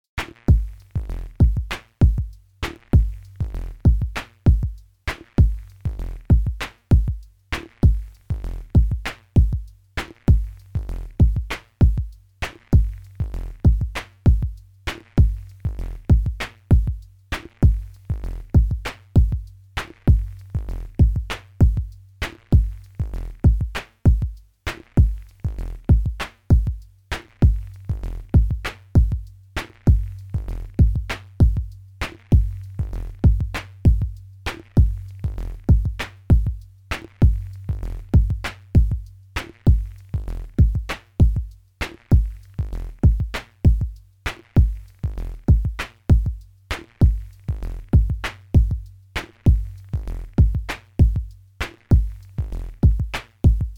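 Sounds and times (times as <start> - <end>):
drum machine pattern: 0.1 - 53.7.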